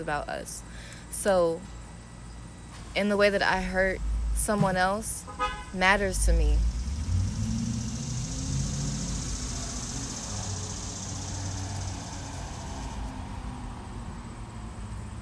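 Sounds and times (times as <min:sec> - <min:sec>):
speech: 0:00.0 - 0:01.8, 0:02.9 - 0:06.7
low car engine rumble: 0:00.0 - 0:15.2
cars passing by: 0:02.6 - 0:15.2
road hiss: 0:05.5 - 0:15.2.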